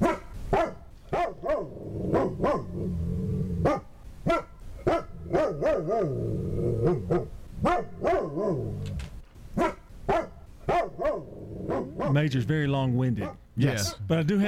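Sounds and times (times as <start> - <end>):
dog barking: 0.0 - 2.8, 3.6 - 6.2, 6.8 - 8.7, 9.6 - 12.2, 13.2 - 13.4
speech: 12.2 - 14.4.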